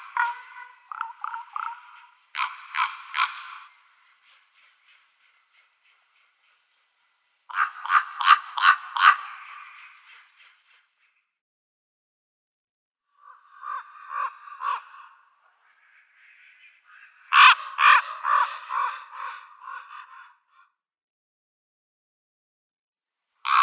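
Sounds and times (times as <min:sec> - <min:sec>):
common raven giving rough rattling calls: 0:00.0 - 0:11.2, 0:13.2 - 0:20.6, 0:23.4 - 0:23.6.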